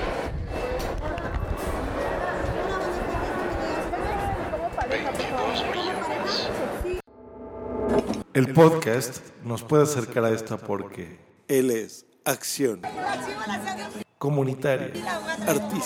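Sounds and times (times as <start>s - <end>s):
street crowd in Mexico City chattering: 0.0s - 7.0s, 12.8s - 14.0s, 15.0s - 15.8s
speech: 8.4s - 15.8s.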